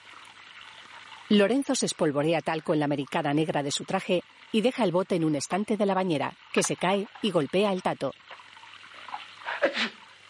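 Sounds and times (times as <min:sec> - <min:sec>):
speech: 0:01.3 - 0:08.4
man sneezing in a bathtub: 0:09.5 - 0:10.0.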